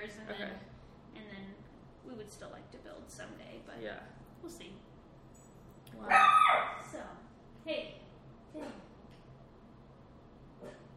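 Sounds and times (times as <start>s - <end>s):
steady low hum: 0.0s - 10.9s
speech: 0.1s - 4.9s, 5.9s - 8.9s, 10.6s - 10.8s
small dog yipping: 6.1s - 6.9s.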